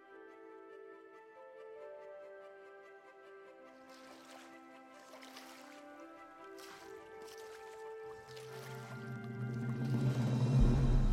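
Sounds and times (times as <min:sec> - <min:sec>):
person wading through stomach-deep floodwater: 0:02.9 - 0:11.1.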